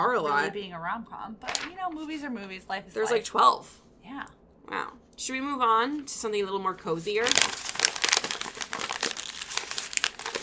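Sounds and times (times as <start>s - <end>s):
speech: 0.0s - 7.9s
paper being crinkled up: 1.4s - 2.0s, 7.2s - 10.4s.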